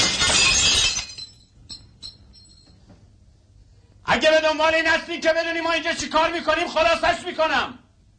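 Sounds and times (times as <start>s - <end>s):
glass pane of an entrance door smashed with a rifle butt: 0.0s - 1.5s
tinkles of falling glass shards: 0.0s - 2.8s
speech: 4.1s - 7.8s.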